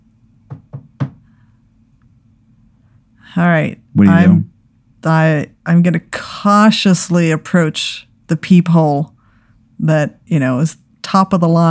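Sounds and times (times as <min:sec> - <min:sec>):
faint hum: 0:00.0 - 0:11.6
firm knocks on a wooden door: 0:00.5 - 0:01.2
speech: 0:03.3 - 0:09.1, 0:09.8 - 0:11.6.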